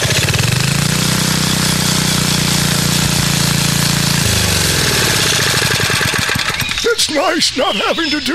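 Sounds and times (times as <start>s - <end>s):
small engine running: 0.0s - 6.8s
speech: 7.2s - 8.3s.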